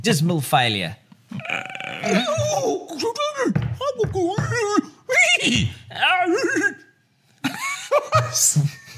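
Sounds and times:
speech: 0.0s - 6.7s, 8.1s - 8.8s
horses whinnying and neighing: 1.4s - 2.6s.

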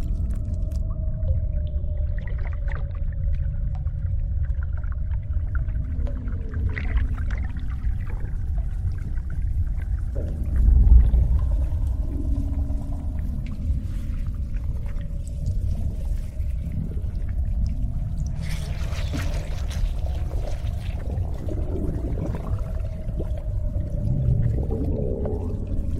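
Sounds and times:
deep constant rumble: 0.0s - 25.9s
low droning tone: 0.0s - 25.9s
wet slimy gurgles: 4.8s - 25.9s.

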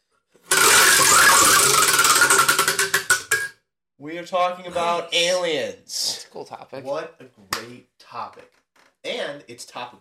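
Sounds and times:
topic wheel with fifty slots spinning and ticking: 0.5s - 3.5s
speech: 4.2s - 9.9s.

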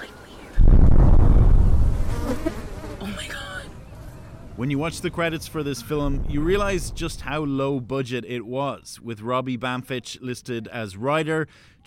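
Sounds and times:
swarm of bees buzzing: 0.6s - 6.0s
speech: 4.6s - 11.8s.

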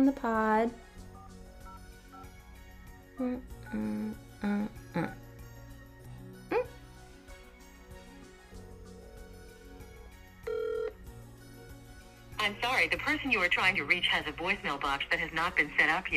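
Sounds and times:
speech: 0.0s - 0.8s, 3.2s - 5.2s, 12.5s - 16.1s
telephone call being placed and ringing out: 10.4s - 11.0s.

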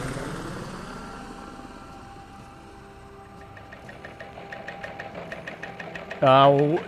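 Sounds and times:
brief loud burst with a voice-like warble: 0.0s - 3.6s
helicopter sound effect with rotor thumping and engine whine: 0.0s - 6.8s.

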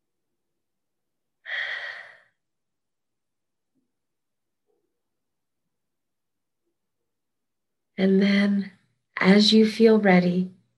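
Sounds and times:
slow breath out during a guided breathing exercise: 1.4s - 2.4s
speech: 8.0s - 10.6s.

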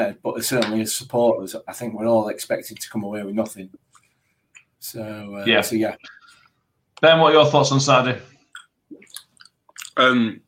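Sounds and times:
speech: 0.0s - 3.9s, 4.8s - 6.2s, 7.0s - 8.3s, 10.0s - 10.4s
wet chewing and crunching of food: 8.5s - 10.1s.

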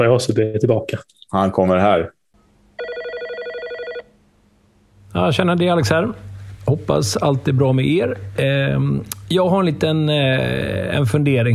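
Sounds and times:
speech: 0.0s - 2.2s, 5.2s - 11.5s
telephone ringing with a bell-like trill: 2.8s - 4.1s.

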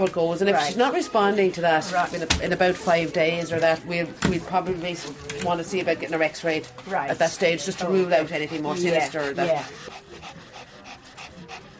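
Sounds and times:
speech: 0.0s - 10.4s
older female dog panting at the vet: 7.0s - 11.7s.

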